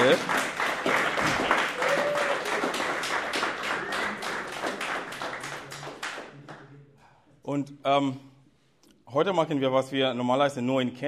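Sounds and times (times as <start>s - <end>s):
audience at a church service clapping: 0.0s - 6.7s
speech: 0.1s - 0.5s, 7.8s - 8.3s, 9.1s - 11.0s.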